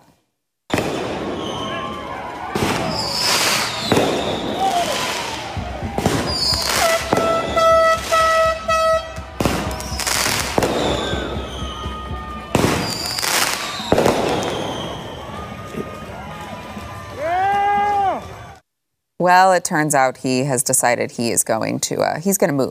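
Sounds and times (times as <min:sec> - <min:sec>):
whistling rockets rising in pitch: 0:00.7 - 0:15.8
fireworks banging outside an apartment: 0:00.7 - 0:16.1
fireworks crackling: 0:00.7 - 0:18.0
speech: 0:19.2 - 0:22.6.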